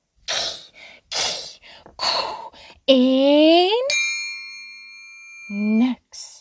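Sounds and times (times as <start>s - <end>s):
person imitating a goose hissing: 0.3s - 2.2s
speech: 2.9s - 3.8s.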